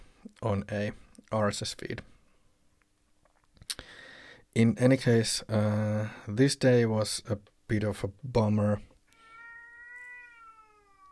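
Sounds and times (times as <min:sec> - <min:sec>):
speech: 0:00.4 - 0:02.1, 0:04.5 - 0:08.9
male cat meowing in a long drawn-out call: 0:09.1 - 0:11.1.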